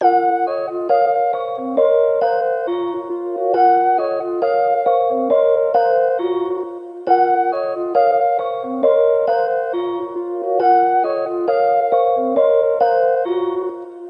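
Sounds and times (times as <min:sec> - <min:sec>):
melody: 0:00.0 - 0:14.0.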